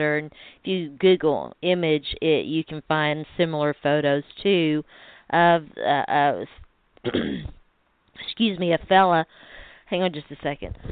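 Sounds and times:
speech: 0.0 - 7.6, 8.2 - 10.9
person coughing: 7.0 - 7.6.

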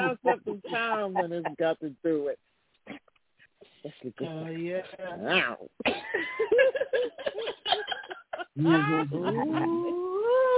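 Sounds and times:
choppy laughter and chatter: 0.0 - 1.9, 6.2 - 10.5
speech: 0.1 - 3.0, 3.8 - 10.5.

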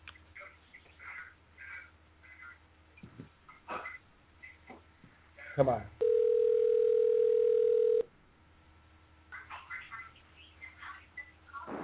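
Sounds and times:
speech: 5.6 - 6.0
telephone dial tone: 6.0 - 8.1.

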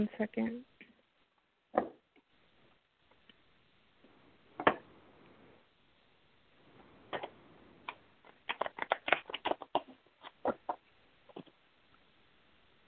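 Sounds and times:
speech: 0.0 - 0.8
deck of cards being shuffled: 7.1 - 11.6.

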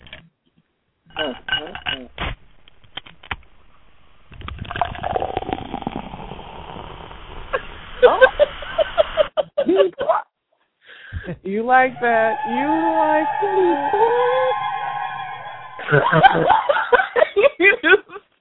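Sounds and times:
glass clinks: 1.1 - 2.1
Coke pouring into a glass: 4.4 - 8.0
people laughing: 8.0 - 10.2, 15.8 - 17.8
speech: 11.6 - 14.6, 15.9 - 16.6.

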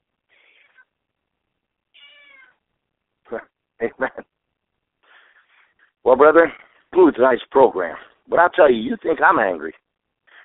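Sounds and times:
upset cat meowing: 1.9 - 2.6
speech: 3.3 - 4.3, 6.1 - 9.8.

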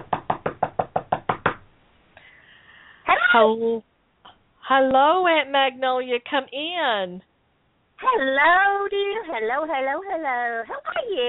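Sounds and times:
firm knocks on a door by a visiting woman: 0.0 - 1.7
speech: 3.3 - 3.9, 4.7 - 7.3, 8.1 - 11.2.

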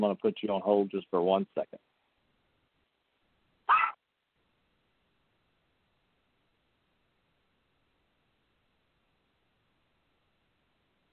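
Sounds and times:
speech: 0.0 - 1.8
single sharp dog bark: 3.7 - 4.0.

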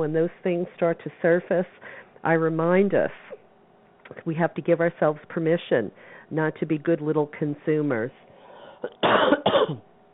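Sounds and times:
speech: 0.0 - 3.4, 4.1 - 8.2, 8.8 - 9.9
throat clearing: 8.8 - 9.8
harsh dry coughs: 8.8 - 9.9.

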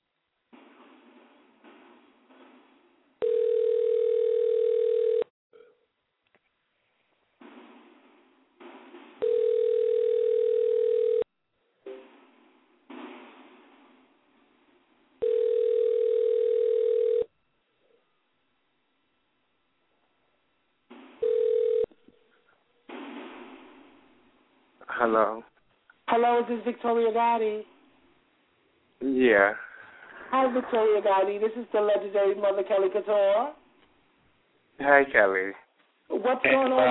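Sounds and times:
telephone line tone while a call is dialed: 3.2 - 5.3, 9.2 - 11.2, 15.2 - 17.3, 21.2 - 21.9
speech: 25.0 - 25.5, 26.1 - 27.7, 29.2 - 29.6, 30.3 - 33.6, 34.8 - 36.8.

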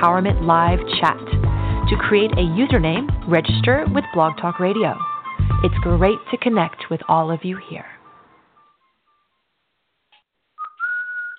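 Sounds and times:
speech: 0.0 - 7.9
person whistling a short tune: 10.6 - 11.3.

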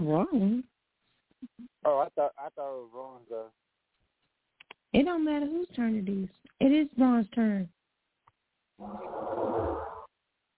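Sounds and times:
speech: 0.1 - 0.7, 1.4 - 3.6, 4.9 - 7.8, 8.8 - 9.9
person snoring: 8.8 - 10.1.

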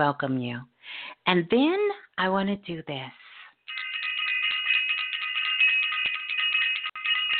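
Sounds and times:
speech: 0.0 - 3.2
bright bell ringing with a shimmering metallic tone: 3.7 - 7.3.

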